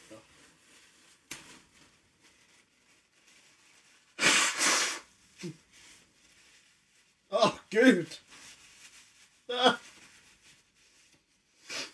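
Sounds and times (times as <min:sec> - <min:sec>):
faint rustling: 0:00.0 - 0:04.2, 0:05.1 - 0:11.9
nose blowing into a paper tissue: 0:04.1 - 0:05.7, 0:11.6 - 0:11.9
speech: 0:05.4 - 0:05.6, 0:07.7 - 0:08.3.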